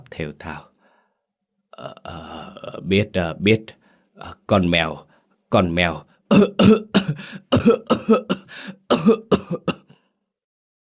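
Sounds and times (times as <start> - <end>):
speech: 0.2 - 0.7, 1.8 - 9.8
frail sickly person in a violent choking coughing fit: 6.3 - 10.0.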